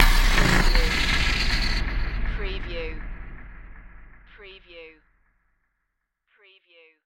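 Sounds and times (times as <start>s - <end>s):
hit burst: 0.0s - 5.2s.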